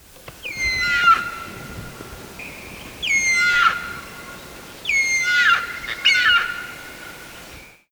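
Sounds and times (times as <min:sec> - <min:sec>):
rock hyrax calling: 0:00.4 - 0:01.5, 0:03.0 - 0:06.8.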